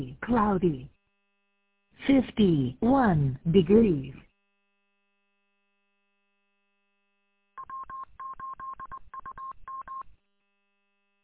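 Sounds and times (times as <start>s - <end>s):
speech: 0.0s - 0.9s, 2.0s - 4.2s
automatic telephone touch-tone dialing beeps: 7.6s - 10.1s.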